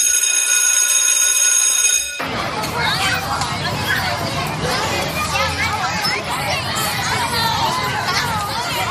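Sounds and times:
steady electric school bell ringing: 0:00.0 - 0:02.3
crowd of children shouting and chattering in a school playground: 0:01.8 - 0:08.9.

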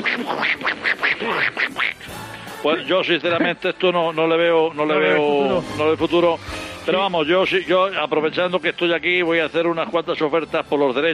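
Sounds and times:
voice imitating a cartoon duck's raspy quacking: 0:00.0 - 0:02.0
speech: 0:01.2 - 0:01.9, 0:02.6 - 0:11.1.

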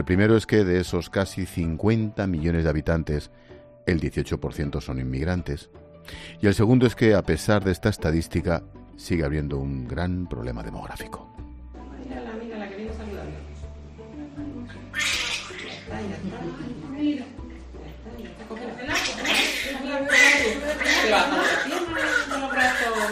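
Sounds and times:
speech: 0:00.0 - 0:11.4
newborn baby a few days old crying: 0:14.7 - 0:15.9, 0:18.9 - 0:23.1
laughter: 0:15.8 - 0:16.8, 0:18.2 - 0:23.1.

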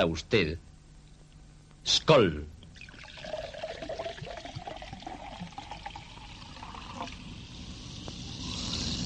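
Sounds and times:
speech: 0:00.0 - 0:00.7, 0:01.8 - 0:02.5
beer pouring into a glass: 0:02.7 - 0:09.0.

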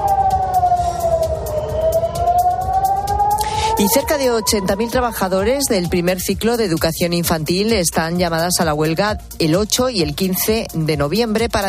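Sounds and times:
air raid siren in Tel Aviv wailing after rocket launches: 0:00.0 - 0:06.8
speech: 0:03.8 - 0:11.6.

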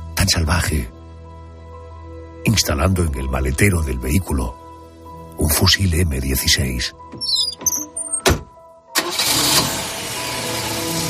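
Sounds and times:
speech: 0:00.3 - 0:01.0, 0:02.6 - 0:04.6, 0:05.4 - 0:07.6
car engine cranking with a whirring starter and idling: 0:07.7 - 0:11.0.

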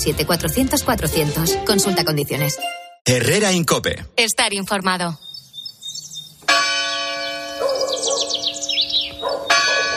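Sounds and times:
speech: 0:00.0 - 0:05.3
birds chirping and twittering: 0:04.6 - 0:09.9
church bell strikes in Mejorada del Campo, Madrid, Spain: 0:06.4 - 0:09.9.

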